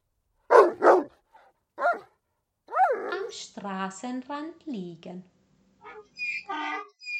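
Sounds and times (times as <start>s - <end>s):
old dog barking by a roadside: 0.5s - 1.2s, 1.8s - 3.3s
speech: 3.3s - 5.4s.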